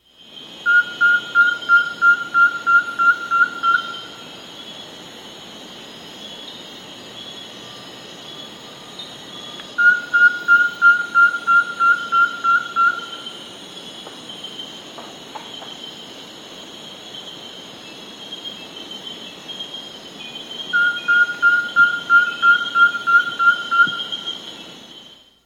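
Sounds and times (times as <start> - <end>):
Least Pygmy-Owl calling in South America: 0.7 - 4.2, 9.8 - 13.3, 20.8 - 24.3.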